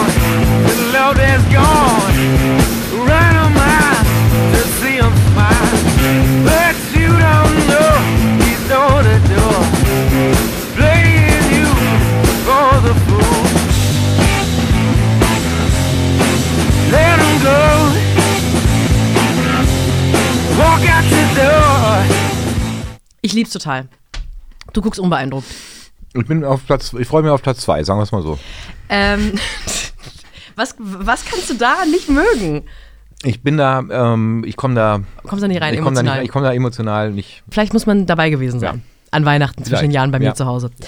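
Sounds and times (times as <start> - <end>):
rock song from a soundtrack with drums bass electric guitars and vocals: 0.0 - 23.0
speech: 23.5 - 24.0, 24.7 - 29.8, 30.6 - 40.8
laughter: 29.0 - 30.3.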